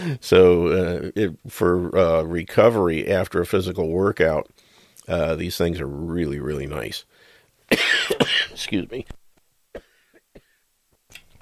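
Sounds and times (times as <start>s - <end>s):
speech: 0.0s - 7.1s, 7.7s - 9.2s
person coughing dry coughs: 7.7s - 8.7s, 9.7s - 10.6s.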